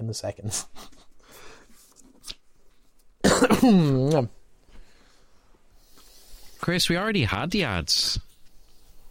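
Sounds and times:
speech: 0.1 - 1.0, 3.4 - 4.4, 6.6 - 8.3
person coughing: 3.2 - 4.1
rough voiced throat-clearing grunt: 3.2 - 4.2.

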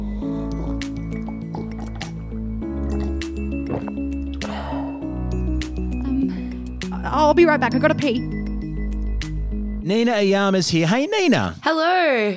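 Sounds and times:
steady music: 0.0 - 11.5
person rapidly gulping down a liter of water: 1.0 - 4.6
speech: 7.1 - 8.3, 9.9 - 12.3.

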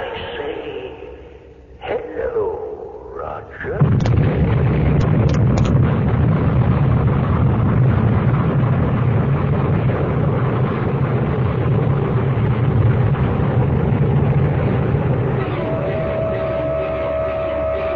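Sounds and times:
loud sustained deep explosion roar: 1.8 - 17.9
crackling pops: 3.8 - 13.7.

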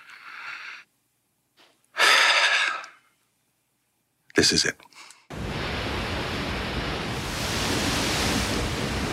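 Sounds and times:
speech: 4.4 - 5.1
colossal ocean wave over 60 feet tall crashing down: 5.3 - 9.1.

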